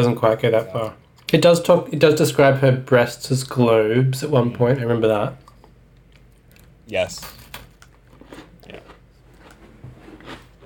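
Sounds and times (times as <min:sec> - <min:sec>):
speech: 0:00.0 - 0:05.4, 0:06.9 - 0:07.4
crunchy biting and chewing of biscuits: 0:05.4 - 0:10.6.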